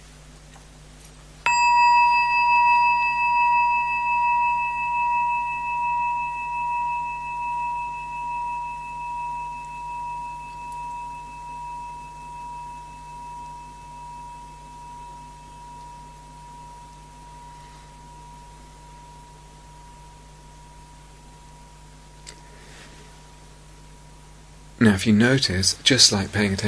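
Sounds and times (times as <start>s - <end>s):
single bell struck once: 1.5s - 20.3s
speech: 24.8s - 26.6s.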